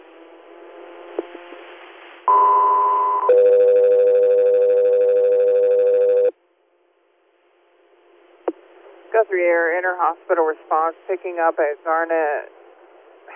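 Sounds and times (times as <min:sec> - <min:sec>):
radio dispatch alert tones: 0:02.3 - 0:06.3
speech: 0:09.4 - 0:12.6.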